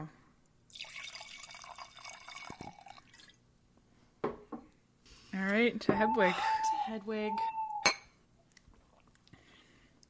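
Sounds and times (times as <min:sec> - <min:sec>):
liquid pouring in a splashy stream: 0:00.7 - 0:03.4
speech: 0:05.4 - 0:07.6.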